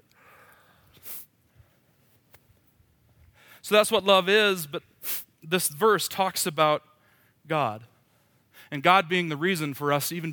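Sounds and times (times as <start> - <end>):
sniffing through the nose: 0.9 - 1.3, 5.0 - 5.3
speech: 3.6 - 4.9, 5.5 - 6.9, 7.5 - 7.9, 8.6 - 10.3.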